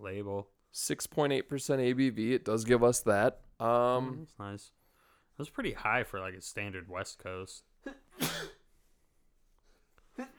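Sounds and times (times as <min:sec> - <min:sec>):
speech: 0:00.0 - 0:04.8, 0:05.4 - 0:08.6
person sneezing from hops in the nose while tasting beer: 0:07.9 - 0:08.6.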